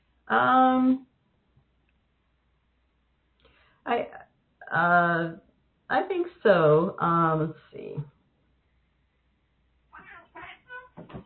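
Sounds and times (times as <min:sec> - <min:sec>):
speech: 0:00.3 - 0:01.1, 0:03.9 - 0:08.1
cats fighting with yowls and growls: 0:09.9 - 0:11.2.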